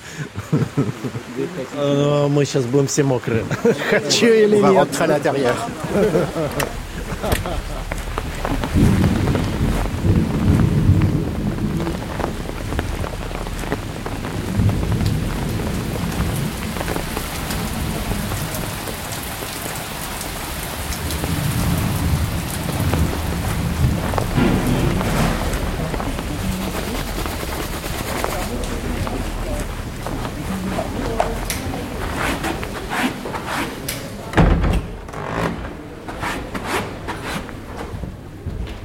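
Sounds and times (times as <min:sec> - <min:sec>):
laughter: 0:00.0 - 0:01.7, 0:03.3 - 0:08.8
heavy rain pouring outdoors: 0:00.0 - 0:36.0
speech: 0:00.2 - 0:07.4
deep rumbles of thunder: 0:05.7 - 0:32.8.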